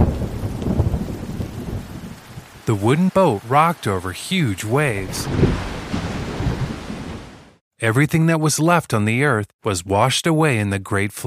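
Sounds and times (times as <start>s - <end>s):
pouring rain: 0.0s - 7.6s
thunder rumbling: 0.0s - 7.6s
speech: 2.7s - 5.7s, 7.8s - 11.2s.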